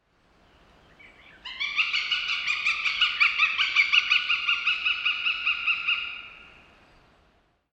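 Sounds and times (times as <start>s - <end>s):
northern goshawk call: 1.4s - 6.4s.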